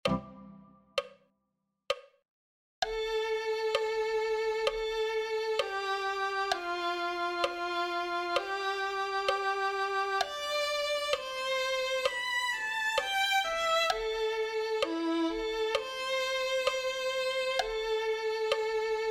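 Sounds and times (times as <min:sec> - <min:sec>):
violin melody: 0:00.0 - 0:00.8, 0:02.9 - 0:19.1.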